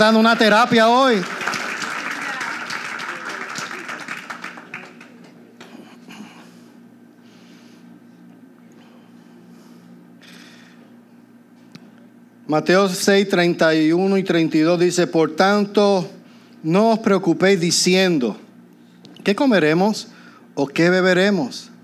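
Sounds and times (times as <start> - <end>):
speech: 0.0 - 1.4, 12.5 - 18.4, 19.2 - 21.7
audience applauding: 0.0 - 5.5.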